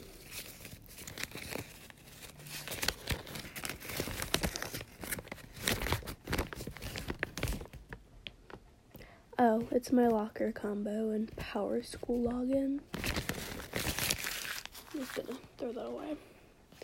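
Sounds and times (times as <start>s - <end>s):
paper being unfolded: 0.0s - 7.9s, 12.9s - 15.5s
speech: 9.4s - 13.0s, 15.0s - 16.3s.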